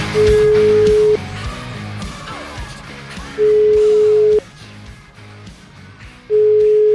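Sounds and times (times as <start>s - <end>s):
ringback tone of an outgoing telephone call: 0.2s - 1.2s, 3.4s - 4.4s, 6.3s - 6.9s.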